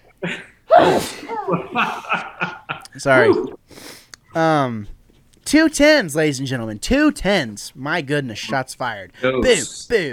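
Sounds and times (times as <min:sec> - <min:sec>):
speech: 0:00.2 - 0:01.1, 0:03.0 - 0:03.6, 0:04.4 - 0:10.1
sneeze: 0:00.7 - 0:01.4
laughter: 0:01.2 - 0:03.6.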